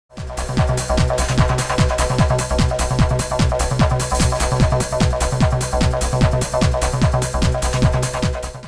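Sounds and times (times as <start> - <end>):
dance beat: 0.1 - 8.6.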